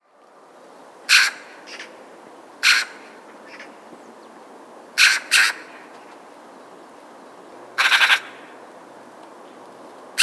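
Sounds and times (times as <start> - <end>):
Eurasian magpie Pica pica harsh chak calls: 1.1 - 1.5, 2.6 - 3.6, 5.0 - 5.7, 7.8 - 8.3.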